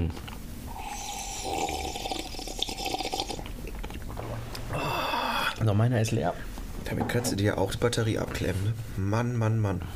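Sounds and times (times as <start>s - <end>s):
speech: 0.0s - 0.3s, 5.6s - 9.9s
coffee being sipped with wet slurping and mouth noises: 0.7s - 4.6s.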